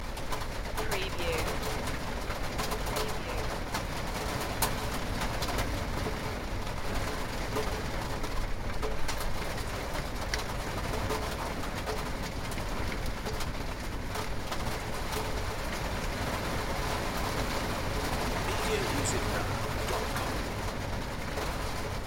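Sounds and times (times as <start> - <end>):
heavy rain: 0.0 - 22.0.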